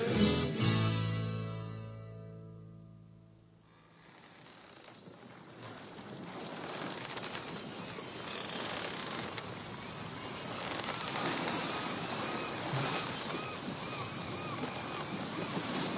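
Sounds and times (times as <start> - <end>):
wind: 0.0 - 15.9
ship sailing through ocean waves with rushing water and surf: 4.0 - 15.9.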